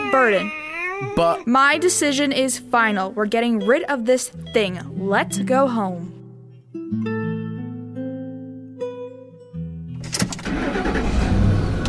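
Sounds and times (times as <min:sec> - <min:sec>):
speech: 0:00.1 - 0:06.2
car engine starting: 0:10.0 - 0:11.8.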